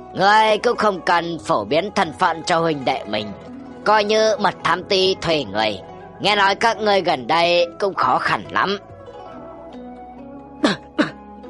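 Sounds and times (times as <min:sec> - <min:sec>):
speech: 0:00.1 - 0:08.9, 0:10.6 - 0:10.8
short dry coughs: 0:10.6 - 0:11.2.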